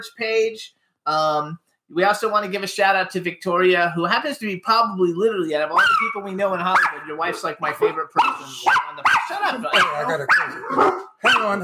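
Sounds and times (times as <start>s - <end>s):
speech: 0.0s - 11.6s
dogs barking at someone making a delivery: 5.8s - 11.6s.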